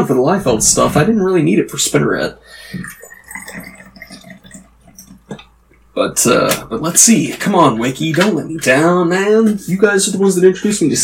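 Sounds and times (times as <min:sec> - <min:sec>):
speech: 0:00.1 - 0:03.7, 0:06.0 - 0:11.0
shot of scotch pouring into a glass: 0:02.6 - 0:06.0.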